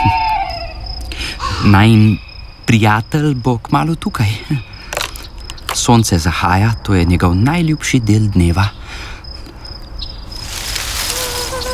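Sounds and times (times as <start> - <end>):
steady high insect drone and hiss: 0.0 - 11.7
speech: 1.6 - 4.7, 5.8 - 9.1
thin whining mosquito buzzing at sunset: 10.9 - 11.7.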